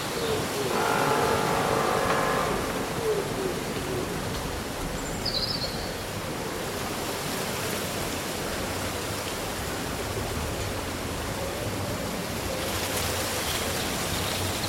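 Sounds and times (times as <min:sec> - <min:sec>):
leaves rustling in wind on a windy summer day: 0:00.0 - 0:14.6.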